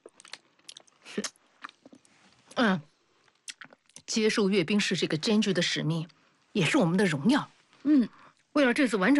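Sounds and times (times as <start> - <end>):
crunchy chewing and biting of jujube dates: 0.0 - 2.5
speech: 1.2 - 1.4, 2.6 - 2.9, 4.2 - 9.1.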